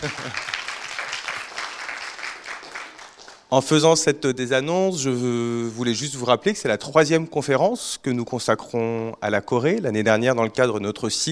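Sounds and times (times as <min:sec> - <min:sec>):
speech: 0:00.0 - 0:00.6, 0:03.5 - 0:11.3
audience applause: 0:00.0 - 0:03.5.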